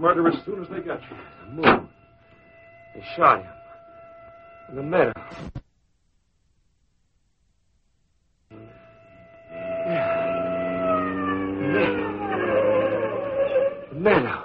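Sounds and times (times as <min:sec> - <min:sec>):
speech: 0:00.0 - 0:01.9, 0:03.0 - 0:03.6, 0:04.7 - 0:05.6, 0:14.0 - 0:14.4
low engine drone: 0:00.0 - 0:05.3, 0:08.5 - 0:14.4
wailing siren: 0:00.0 - 0:05.4, 0:08.5 - 0:14.4.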